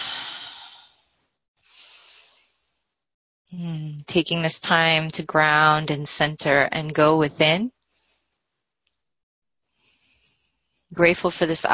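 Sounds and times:
deep cleansing breath during a guided prayer: 0.0 - 2.9, 9.6 - 10.9
speech: 3.5 - 7.8, 10.9 - 11.7.

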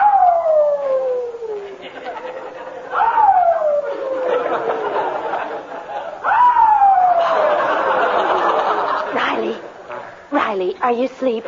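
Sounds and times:
new puppy howling late at night in a garage: 0.0 - 1.7, 2.9 - 4.8
laughter: 1.6 - 6.3, 7.0 - 10.0
speech: 10.9 - 11.4.

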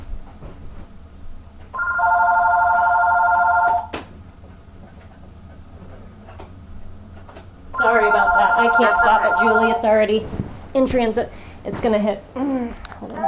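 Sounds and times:
telephone ringing in a loud electronic trill: 1.8 - 3.9, 7.8 - 10.1
speech: 8.8 - 12.8.

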